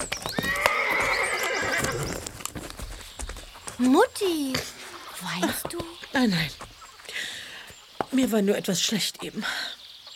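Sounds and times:
horse hooves clopping: 0:00.0 - 0:09.6
horse whinnying: 0:00.3 - 0:02.3
speech: 0:03.8 - 0:06.6, 0:08.1 - 0:09.7.

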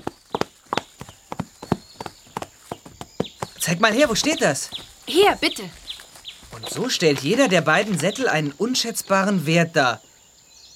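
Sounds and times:
ridden horse hooves clip-clopping at a walk: 0:00.0 - 0:08.2
speech: 0:03.6 - 0:05.8, 0:06.8 - 0:10.1.

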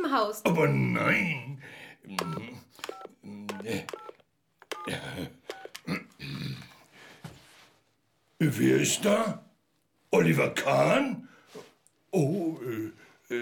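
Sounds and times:
speech: 0:00.1 - 0:04.1, 0:04.8 - 0:05.4, 0:08.4 - 0:09.4, 0:10.1 - 0:11.3, 0:12.1 - 0:13.4
mobile phone keypad dual-tone beeps dialing a number: 0:02.2 - 0:05.9.

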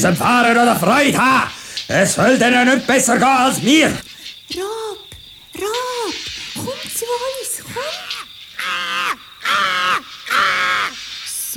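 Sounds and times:
speech: 0:00.0 - 0:05.0, 0:05.6 - 0:08.1
captured bird cawing: 0:03.6 - 0:11.4.

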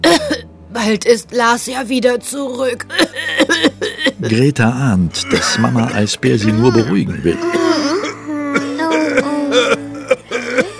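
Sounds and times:
rough throaty coughs: 0:00.0 - 0:00.5, 0:02.9 - 0:04.3, 0:05.1 - 0:10.7
speech: 0:00.8 - 0:07.9.

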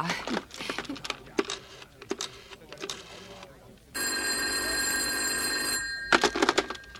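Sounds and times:
clattering and handling noises: 0:00.0 - 0:03.5, 0:06.0 - 0:06.9
metallic telephone bell ringing: 0:04.0 - 0:06.9.

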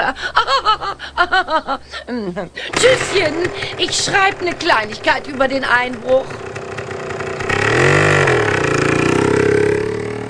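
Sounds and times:
laughter: 0:00.0 - 0:04.5
speech: 0:00.2 - 0:06.4
vehicle engine driving off: 0:02.7 - 0:10.2.

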